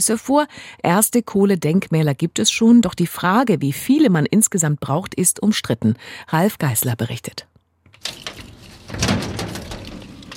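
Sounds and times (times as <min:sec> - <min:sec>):
speech: 0:00.0 - 0:08.3
heavy door of an old briquette factory opening and dragging: 0:07.9 - 0:10.3
sharp metallic clack of a factory door: 0:07.9 - 0:10.3
long grinding scraping rumble of a factory door dragging: 0:08.0 - 0:10.3.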